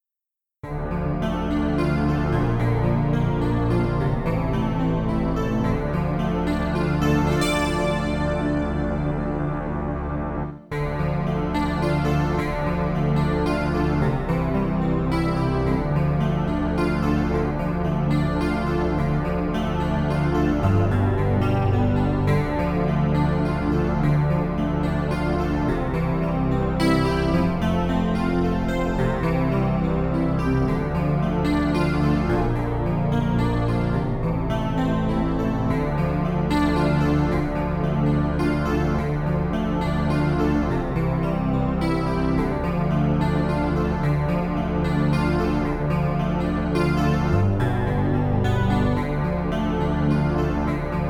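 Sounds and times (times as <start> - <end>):
bass melody an octave higher: 0.6 - 51.0.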